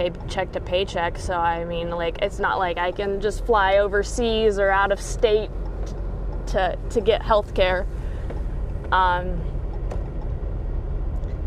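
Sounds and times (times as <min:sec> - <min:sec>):
speech: 0:00.0 - 0:08.0, 0:08.9 - 0:09.5
road and engine rumble inside a moving car: 0:00.0 - 0:11.4.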